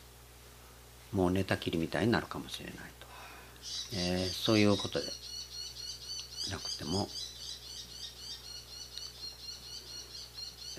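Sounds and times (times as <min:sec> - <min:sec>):
speech: 0:01.1 - 0:03.0, 0:03.6 - 0:05.3, 0:06.5 - 0:07.3
bull-headed shrike calling: 0:03.6 - 0:10.7.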